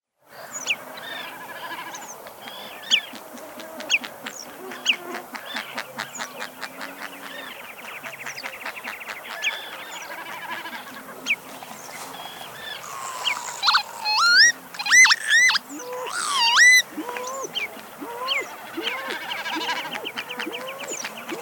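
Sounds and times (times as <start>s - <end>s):
northern lapwing calling: 0.4s - 21.4s.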